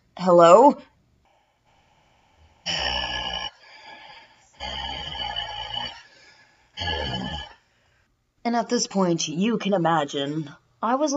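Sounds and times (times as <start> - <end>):
speech: 0.2 - 0.9, 8.4 - 11.1
heavy raspy breathing over a phone line: 1.2 - 8.1.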